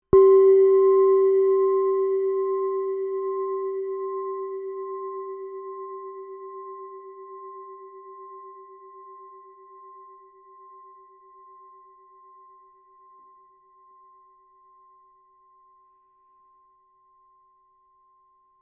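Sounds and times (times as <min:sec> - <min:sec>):
246g singing bowl: 0:00.1 - 0:18.6.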